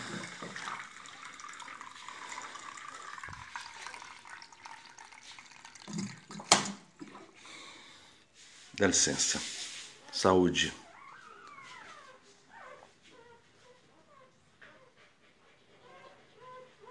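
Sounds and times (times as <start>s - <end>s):
water poured into a glass for drinking: 0.0s - 7.4s
speech: 8.8s - 9.6s, 10.2s - 10.8s.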